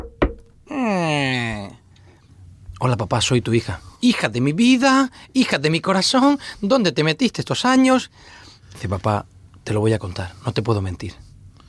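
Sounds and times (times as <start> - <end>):
knock on a door: 0.0 - 0.6
speech: 2.8 - 11.6.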